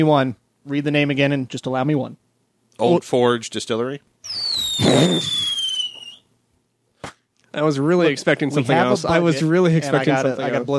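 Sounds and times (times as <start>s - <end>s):
speech: 0.0s - 2.2s, 2.8s - 5.5s, 7.6s - 10.7s
firework falling whistle: 4.2s - 6.3s.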